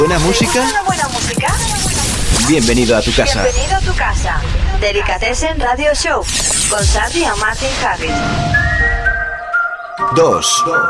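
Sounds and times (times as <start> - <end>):
speech: 0.2 - 1.6, 2.5 - 8.8, 10.0 - 10.8
bright whistled melody in a song: 8.2 - 10.8.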